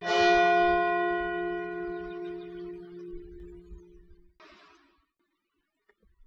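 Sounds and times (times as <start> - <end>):
bells striking: 0.0 - 4.2.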